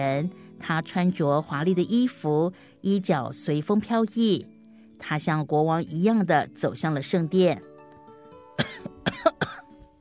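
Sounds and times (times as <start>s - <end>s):
speech: 0.0s - 7.7s
man coughing: 8.6s - 9.7s.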